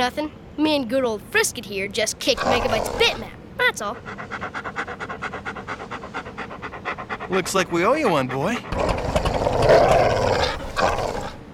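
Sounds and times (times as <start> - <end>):
speech: 0.0 - 4.8, 7.3 - 10.0
dog growling and barking: 2.4 - 3.4, 8.6 - 11.5.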